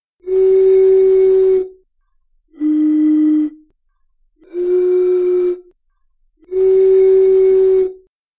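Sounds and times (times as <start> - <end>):
blown bottle tone: 0.2 - 1.8, 2.5 - 3.7, 4.4 - 5.8, 6.5 - 8.1.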